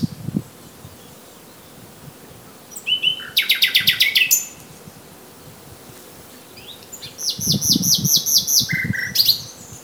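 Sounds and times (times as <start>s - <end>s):
Common nightingale Luscinia megarhynchos singing: 2.7s - 4.6s, 6.4s - 9.8s.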